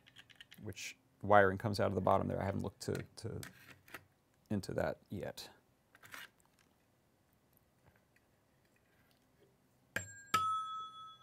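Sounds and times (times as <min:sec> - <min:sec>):
speech: 0:00.6 - 0:03.8, 0:04.5 - 0:05.6
doorbell chime two-note ding-dong: 0:10.0 - 0:11.2.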